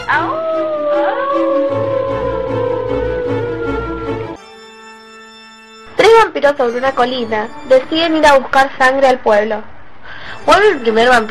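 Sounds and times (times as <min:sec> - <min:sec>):
wolf howling: 0:00.0 - 0:04.4
speech: 0:06.5 - 0:09.7, 0:10.4 - 0:11.2.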